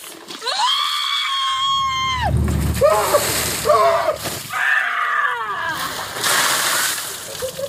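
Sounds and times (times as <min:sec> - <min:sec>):
bucket of ice water splashing on a person's head: 0:01.6 - 0:07.6.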